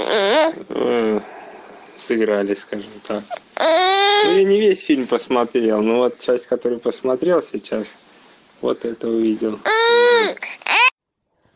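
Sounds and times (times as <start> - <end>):
baby crying: 0.0 - 0.6, 3.3 - 4.7, 9.6 - 11.0
speech: 0.0 - 1.3, 2.0 - 10.6.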